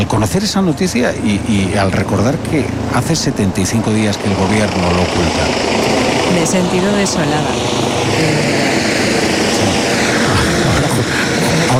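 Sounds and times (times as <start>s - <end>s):
speech: 0.0s - 9.8s
helicopter hovering overhead in Ceuta Spain: 0.0s - 11.7s
laughter: 9.6s - 11.7s.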